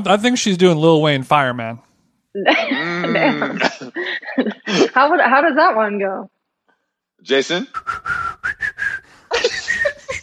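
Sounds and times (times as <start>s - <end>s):
speech: 0.0s - 6.4s, 7.2s - 8.0s
laughter: 2.4s - 5.7s, 9.3s - 10.2s
man attempting to whistle a tune: 7.7s - 10.2s.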